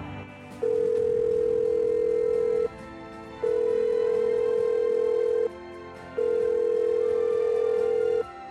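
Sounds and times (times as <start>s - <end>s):
telephone ringback tone: 0.6s - 2.7s, 3.4s - 5.5s, 6.1s - 8.3s.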